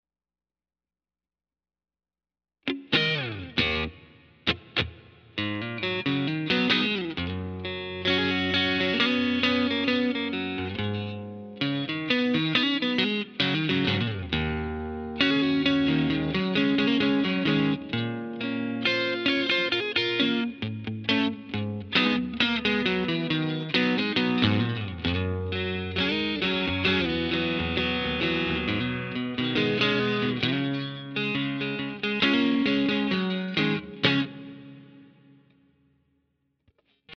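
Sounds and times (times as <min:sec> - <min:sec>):
guitar intro: 0:02.6 - 0:35.9.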